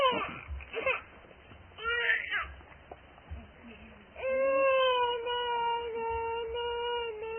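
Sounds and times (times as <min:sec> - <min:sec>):
baby fussing and wailing: 0:00.0 - 0:01.1, 0:01.8 - 0:02.6, 0:04.2 - 0:07.3.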